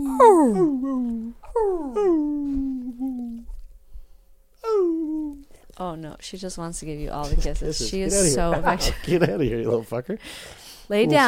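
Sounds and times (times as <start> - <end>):
speech: 0.0 - 2.3, 5.8 - 11.2
dog whimpering and moaning: 0.0 - 3.5, 4.6 - 5.5.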